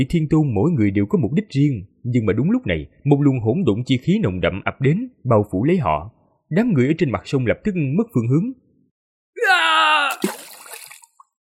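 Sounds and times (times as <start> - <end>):
speech: 0.0 - 8.6, 9.4 - 10.5
person screaming in anguish: 9.4 - 10.5
heavy object splashing into a river: 9.9 - 11.4.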